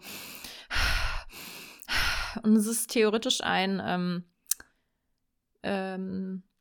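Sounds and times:
loud forceful cyclic breathing in and out, guided hyperventilation: 0.0 - 2.4
speech: 2.4 - 4.3, 5.6 - 6.5.

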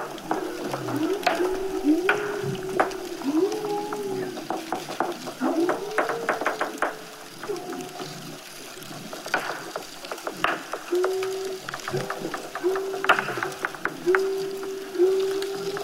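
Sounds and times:
walrus clicks and knocks underwater in Bristol Bay, Alaska: 0.0 - 15.8.

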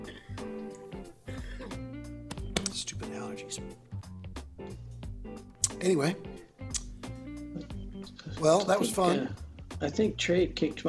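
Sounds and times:
harsh throaty coughs: 1.3 - 1.9
speech: 2.8 - 3.9, 5.8 - 6.3, 8.4 - 10.8.

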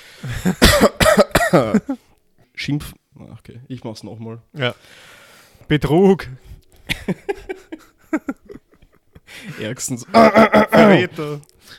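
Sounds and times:
speech: 0.2 - 2.0, 2.6 - 7.5, 8.1 - 8.4, 9.4 - 11.5
person coughing harshly: 0.3 - 2.0
laughter: 6.9 - 11.1.

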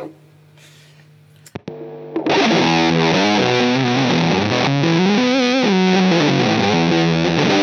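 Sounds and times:
heavily distorted electric guitar on neck pickup: 2.2 - 7.5.

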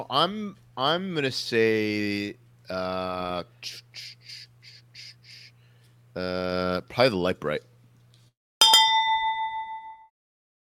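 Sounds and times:
speech: 0.0 - 4.5, 6.2 - 7.7
correct-answer bell chime sound effect: 8.6 - 10.1.

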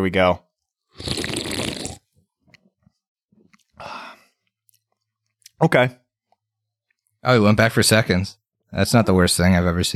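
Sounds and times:
speech: 0.0 - 0.4, 1.0 - 1.2, 5.6 - 6.0, 7.2 - 9.9
small wet mouth sounds and gulps: 0.6 - 5.6
person slurping light beer: 0.9 - 2.2.

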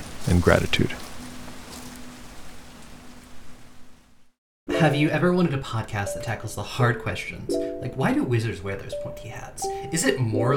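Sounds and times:
heavy cold rain hammering down on a surface: 0.0 - 4.1
speech: 0.2 - 1.0, 4.8 - 10.5.

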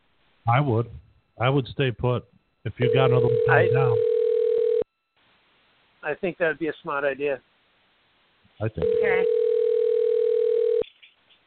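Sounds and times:
speech: 0.5 - 4.1, 6.0 - 7.5, 8.6 - 9.4
outgoing phone call electronic ring tone through the receiver: 2.8 - 4.9, 8.8 - 10.8.

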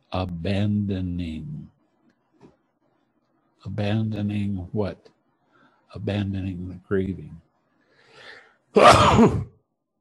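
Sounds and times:
speech: 0.1 - 1.7, 3.6 - 5.2, 5.9 - 7.4, 8.2 - 9.5
faint breath: 5.4 - 5.9, 7.8 - 8.7
loud sneeze: 8.8 - 9.5.

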